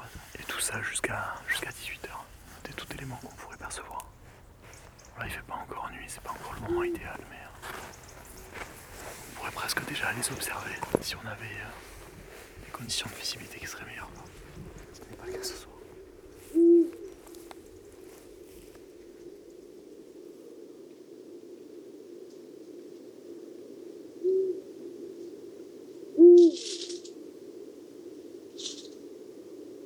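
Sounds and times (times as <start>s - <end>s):
Eurasian eagle-owl giving deep resonant hoots: 0.0s - 12.5s, 13.1s - 29.8s
faint rustling noises: 0.0s - 19.4s
speech: 0.6s - 4.2s, 5.2s - 8.0s, 9.4s - 11.9s, 12.8s - 14.4s, 15.2s - 15.7s.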